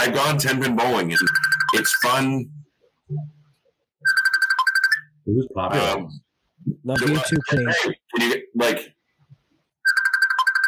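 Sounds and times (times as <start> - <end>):
speech: 0.0 - 3.4, 5.3 - 6.2, 6.8 - 9.0
mobile phone ringtone for an incoming call: 1.2 - 2.1, 4.0 - 5.1, 7.0 - 7.8, 9.9 - 10.6.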